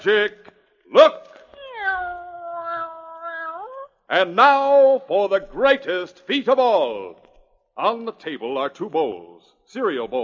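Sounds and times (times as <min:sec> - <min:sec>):
speech: 0:00.0 - 0:01.2, 0:04.1 - 0:07.2, 0:07.8 - 0:10.2
house cat meowing: 0:01.6 - 0:03.8.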